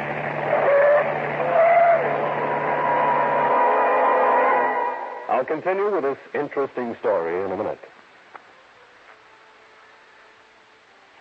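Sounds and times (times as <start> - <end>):
car tires squealing: 0.0 - 5.3
car engine roaring: 0.0 - 5.7
speech: 5.4 - 7.9.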